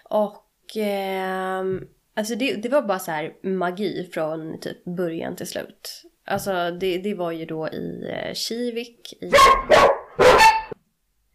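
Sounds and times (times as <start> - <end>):
speech: 0.1 - 9.9
dog barking loudly: 9.3 - 10.8.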